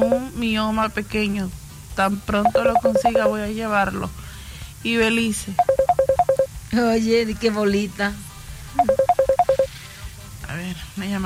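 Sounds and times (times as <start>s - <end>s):
telephone ringtone for an incoming call: 0.0s - 0.3s, 2.4s - 3.4s, 5.6s - 6.5s, 8.8s - 9.7s
speech: 0.0s - 4.2s, 4.8s - 5.8s, 6.7s - 9.0s, 10.6s - 11.2s.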